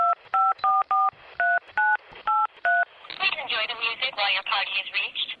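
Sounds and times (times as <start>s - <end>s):
telephone touch-tone dialing beeps: 0.0s - 3.2s
speech: 4.3s - 5.2s.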